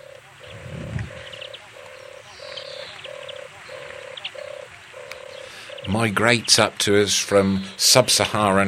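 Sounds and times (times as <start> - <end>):
turtle dove soft rolling purr: 0.0 - 6.6
faint birdsong: 0.0 - 8.6
speech: 5.9 - 8.6.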